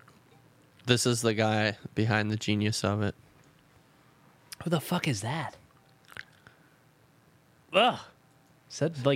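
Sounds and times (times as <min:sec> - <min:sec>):
speech: 0:00.9 - 0:03.2, 0:04.7 - 0:05.6, 0:07.7 - 0:08.1, 0:08.7 - 0:09.1
wet chewing of food: 0:06.0 - 0:06.4.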